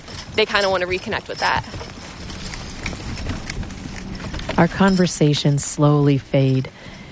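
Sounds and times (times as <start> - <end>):
sleigh runners gliding through snowy woods: 0.0 - 7.1
two draft horses clip-clopping pulling a sleigh through snowy woods: 0.0 - 7.1
speech: 0.4 - 1.9, 4.6 - 6.8.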